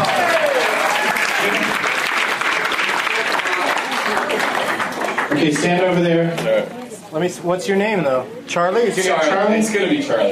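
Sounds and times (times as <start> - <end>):
crowd applauding steadily and loudly: 0.0 - 5.9
speech: 5.4 - 10.2.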